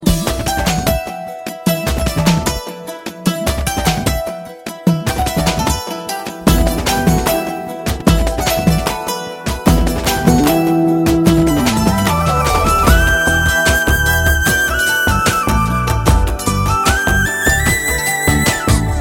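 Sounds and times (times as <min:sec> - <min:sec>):
santoor: 0:00.0 - 0:18.9
flute: 0:10.3 - 0:18.9.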